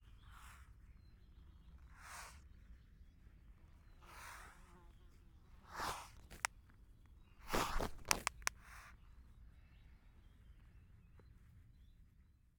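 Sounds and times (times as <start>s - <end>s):
adult female long-eared owl bill snapping in the hand: 5.8s - 6.5s, 7.4s - 8.5s.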